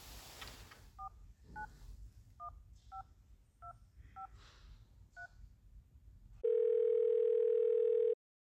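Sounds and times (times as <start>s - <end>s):
phone ringing tone: 6.4s - 8.2s.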